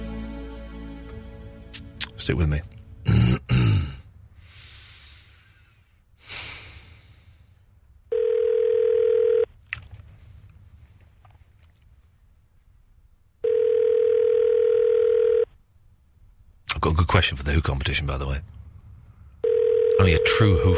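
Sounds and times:
speech: 2.3 - 3.2, 17.2 - 18.6, 20.0 - 20.7
foreign telephone ringing tone on an outgoing call: 8.1 - 9.5, 13.4 - 15.5, 19.4 - 20.7.

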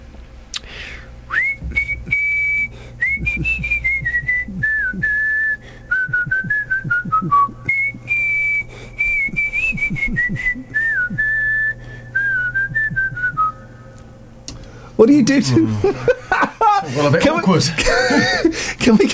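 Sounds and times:
person whistling a melodic tune: 1.3 - 13.6
speech: 15.0 - 16.2, 16.9 - 19.1
laughter: 15.4 - 19.1.

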